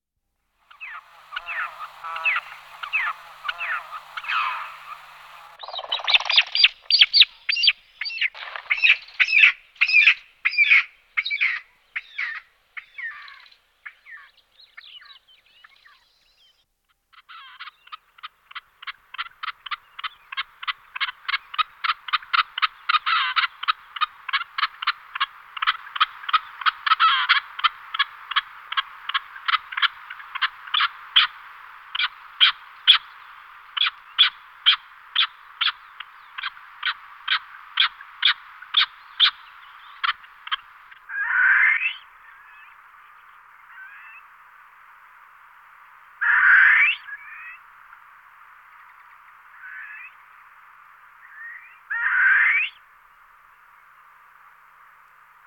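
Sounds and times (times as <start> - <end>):
Barbary partridge Alectoris barbara: 0.7 - 13.4, 17.1 - 44.3, 46.2 - 47.6, 51.2 - 52.8.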